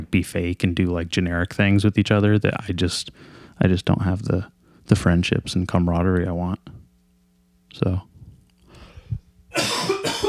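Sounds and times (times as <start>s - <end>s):
speech: 0.1s - 6.8s, 7.7s - 8.1s
person coughing: 9.5s - 10.2s.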